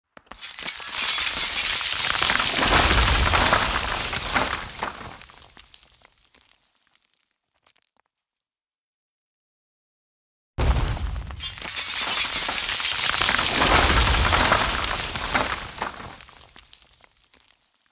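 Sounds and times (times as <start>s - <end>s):
house wall collapsing: 0.3s - 5.8s, 10.6s - 17.0s.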